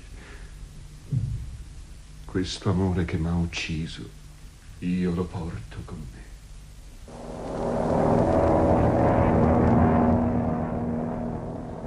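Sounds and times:
speech: 2.3s - 4.2s, 4.8s - 6.3s
propeller airplane engine droning as the plane flies away: 7.1s - 11.8s.

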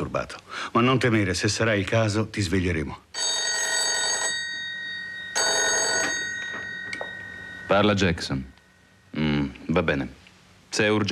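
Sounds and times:
speech: 0.2s - 3.4s, 7.7s - 8.5s, 9.2s - 11.1s
old-fashioned telephone bell ringing: 3.2s - 8.2s.

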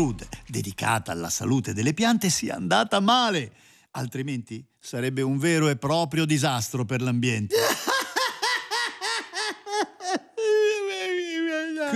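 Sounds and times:
speech: 0.0s - 7.8s
person sobbing in rhythmic gasps: 7.5s - 11.9s.

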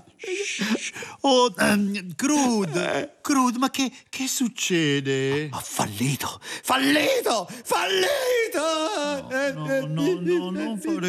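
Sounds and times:
person crying and whimpering: 0.0s - 3.2s, 7.7s - 11.0s
speech: 0.5s - 11.0s.

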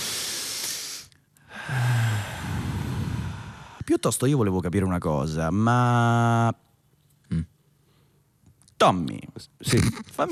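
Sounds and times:
long audible exhale with a low sighing tone: 0.0s - 3.8s
deep breath in: 0.0s - 3.9s
speech: 3.9s - 6.6s, 8.8s - 10.3s.

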